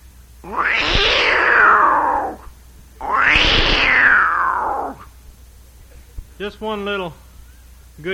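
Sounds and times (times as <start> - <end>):
person imitating a Florida wildcat yowl at a folk festival: 0.4 - 5.1
speech: 6.4 - 7.2, 8.0 - 8.1.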